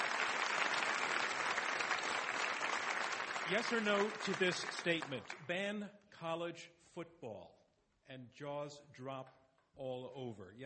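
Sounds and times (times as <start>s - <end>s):
debate audience applause: 0.0s - 5.4s
speech: 3.5s - 10.6s.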